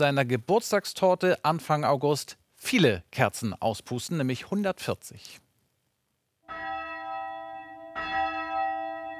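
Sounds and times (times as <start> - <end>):
speech: 0.0 - 5.4
church bell in a bell tower on an island rung by radio remote control: 6.5 - 9.1.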